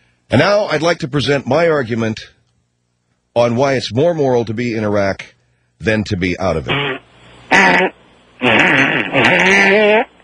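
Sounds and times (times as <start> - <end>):
speech: 0.3 - 2.4, 3.4 - 10.1
fart sound effect: 6.7 - 10.1.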